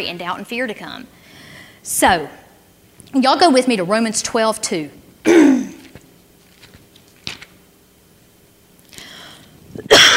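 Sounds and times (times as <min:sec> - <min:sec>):
speech: 0:00.0 - 0:02.4, 0:03.1 - 0:05.7
harsh cough into the microphone: 0:05.2 - 0:05.9, 0:09.8 - 0:10.1.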